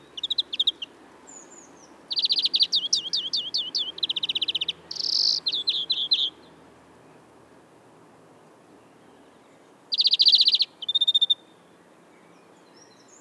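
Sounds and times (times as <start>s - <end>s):
European greenfinch Chloris chloris singing: 0.0s - 6.4s, 9.9s - 11.4s.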